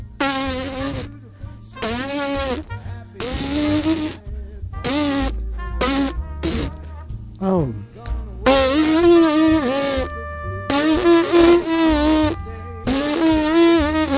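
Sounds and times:
lips buzzing trumpet embouchure up a scale: 0.0 - 1.2, 1.8 - 4.2, 4.8 - 6.9, 8.5 - 14.1.

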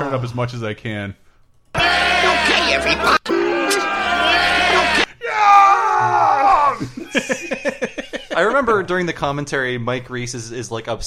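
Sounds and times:
speech: 0.1 - 1.2, 1.8 - 3.4, 8.5 - 11.0
people yelling and screaming: 1.8 - 7.0
laughter: 6.7 - 8.8.

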